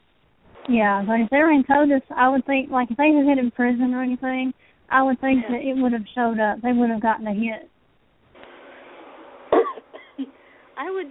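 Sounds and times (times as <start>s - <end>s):
speech: 0.7s - 7.7s, 10.2s - 11.0s
person coughing: 9.6s - 10.3s.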